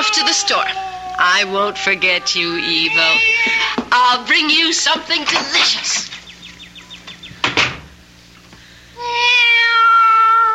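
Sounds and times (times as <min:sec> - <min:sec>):
cat meowing: 0:00.0 - 0:03.8, 0:09.0 - 0:10.5
speech: 0:00.2 - 0:06.1.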